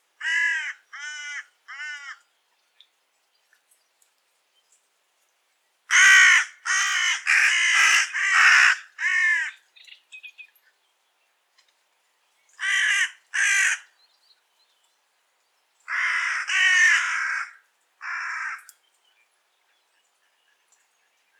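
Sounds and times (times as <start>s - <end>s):
carrion crow Corvus corone cawing: 0.2s - 2.2s, 5.9s - 9.6s, 12.6s - 13.9s, 15.9s - 18.7s.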